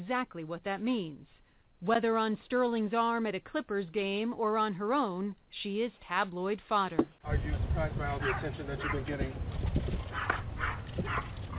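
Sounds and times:
speech: 0:00.0 - 0:09.6
low rumbling background: 0:07.2 - 0:11.5
dog barking: 0:08.2 - 0:09.1, 0:10.1 - 0:11.5.

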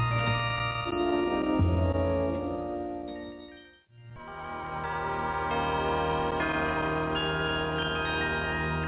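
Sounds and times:
steady low accompaniment: 0:00.0 - 0:03.3
festive Christmas melody played on bells: 0:00.0 - 0:08.8.

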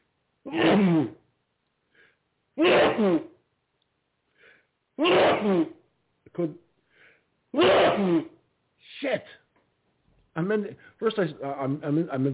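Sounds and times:
speech: 0:00.4 - 0:01.2, 0:02.6 - 0:03.3, 0:05.0 - 0:05.7, 0:06.4 - 0:06.6, 0:07.6 - 0:08.3, 0:09.0 - 0:09.4, 0:10.4 - 0:12.3
person sneezing forcefully: 0:00.5 - 0:01.2, 0:02.6 - 0:03.4, 0:05.0 - 0:05.8, 0:07.6 - 0:09.0
quick faint breaths and small vocal sounds: 0:01.8 - 0:02.3, 0:04.3 - 0:04.8, 0:06.8 - 0:07.4, 0:10.7 - 0:11.0.

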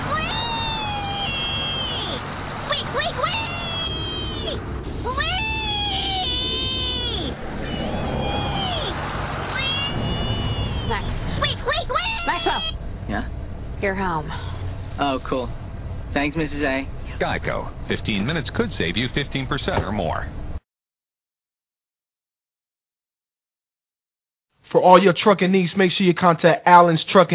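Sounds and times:
voice squealing wee cries imitating a piglet: 0:00.0 - 0:12.8
steady rumble of noise: 0:00.0 - 0:20.6
speech: 0:13.9 - 0:14.4, 0:15.0 - 0:20.4, 0:24.8 - 0:27.3.

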